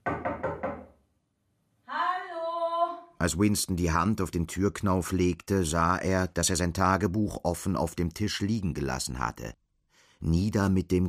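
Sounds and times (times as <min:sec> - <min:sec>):
knocking on an apartment door: 0:00.0 - 0:01.0
speech: 0:03.2 - 0:09.6, 0:10.2 - 0:11.0.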